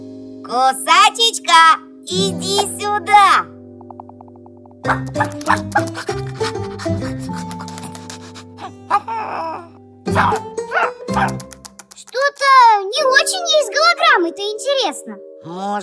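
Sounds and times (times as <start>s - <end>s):
speech: 0.5s - 3.6s, 4.8s - 7.7s, 8.7s - 11.4s, 12.4s - 15.8s
dog barking: 4.9s - 6.6s, 10.1s - 11.4s.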